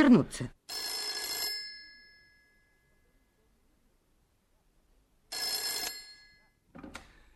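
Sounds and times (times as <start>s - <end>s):
speech: 0.0s - 0.8s
telephone ringing with a bright trilling bell: 0.7s - 2.9s, 5.3s - 6.6s.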